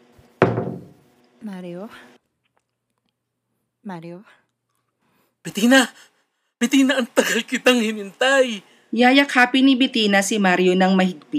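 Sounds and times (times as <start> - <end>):
heavy knock on a door: 0.4 - 1.0
speech: 1.4 - 2.2, 3.8 - 4.4, 5.4 - 11.3.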